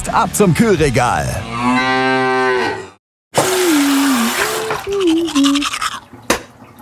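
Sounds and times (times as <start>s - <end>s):
speech: 0.1s - 2.0s, 4.9s - 6.2s
cow mooing: 1.4s - 3.0s
tap water running: 3.4s - 6.8s
person brushing teeth: 3.6s - 6.0s.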